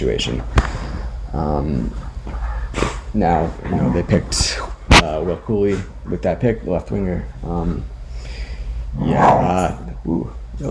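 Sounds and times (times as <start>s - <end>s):
speech: 0.0s - 7.9s, 8.9s - 10.6s
dog growling: 1.7s - 6.3s, 8.9s - 9.9s.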